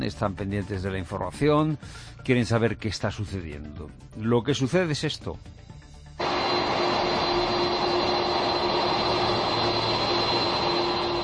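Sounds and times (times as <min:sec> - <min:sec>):
speech: 0:00.0 - 0:05.6
presidential jet engines roaring while taxiing along the runway at Torrejón de Ardoz air base at night: 0:06.2 - 0:11.2.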